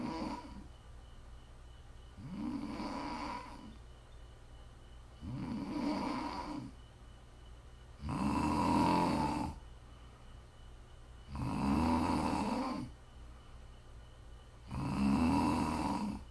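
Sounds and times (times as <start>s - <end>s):
person snoring loudly: 0.0s - 0.7s, 2.2s - 3.7s, 5.2s - 6.7s, 8.0s - 9.6s, 11.3s - 12.9s, 14.6s - 16.2s
faint steady hum: 0.0s - 16.2s.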